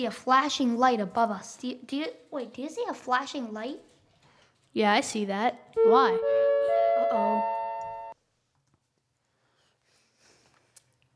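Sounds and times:
speech: 0.0 - 3.9, 4.7 - 7.5
fire alarm test tone: 5.8 - 8.2.

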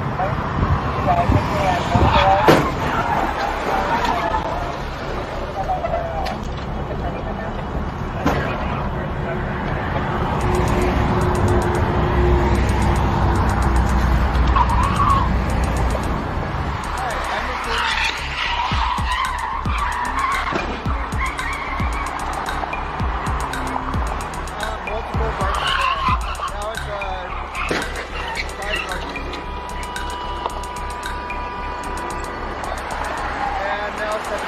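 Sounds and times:
voices: 0.2 - 11.8, 16.8 - 19.5, 24.6 - 30.2, 33.4 - 34.4
car skidding across pavement: 0.5 - 6.9, 7.6 - 23.0, 23.5 - 34.4
harsh crunching car crash impact: 2.4 - 4.3.

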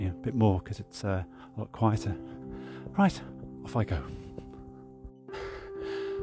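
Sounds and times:
speech: 0.2 - 4.2
person panting heavily after running 1500 metres and a 200 metre sprint: 2.2 - 2.9, 5.3 - 6.2.

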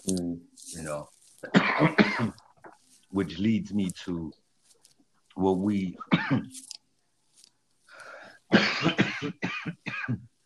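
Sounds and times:
speech: 0.0 - 2.3, 3.2 - 4.4, 5.4 - 6.7, 8.8 - 10.3
man coughing: 1.4 - 2.4, 6.0 - 6.5, 8.5 - 10.3.

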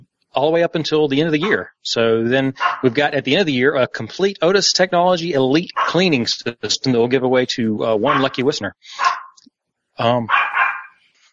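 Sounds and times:
faint noise: 0.0 - 9.2, 10.0 - 10.4
speech: 0.4 - 9.2, 10.0 - 10.4
dog barking: 1.4 - 1.7, 2.6 - 3.0, 5.7 - 6.2, 8.0 - 9.4, 10.2 - 11.0.

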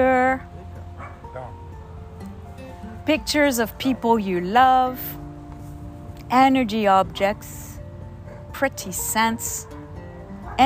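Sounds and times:
speech: 0.0 - 0.5, 3.1 - 5.2, 6.3 - 7.6, 8.6 - 9.8
noise: 0.0 - 10.6
dogs barking with a yelping edge: 1.0 - 1.5, 8.2 - 8.6, 10.4 - 10.6.

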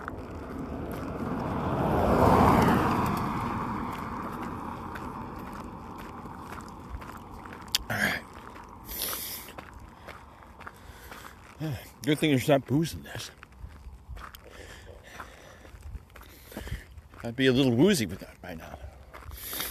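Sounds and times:
car passing by: 0.0 - 11.4
speech: 11.6 - 13.4, 17.2 - 18.8.

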